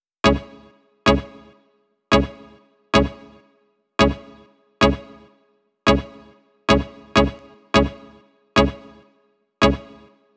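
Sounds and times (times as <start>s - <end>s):
Dirty Dutch electronic dance kit melody: 0.2s - 0.5s, 1.1s - 1.3s, 2.1s - 2.4s, 3.0s - 3.2s, 4.0s - 4.2s, 4.8s - 5.1s, 5.9s - 8.0s, 8.6s - 8.8s, 9.6s - 10.0s.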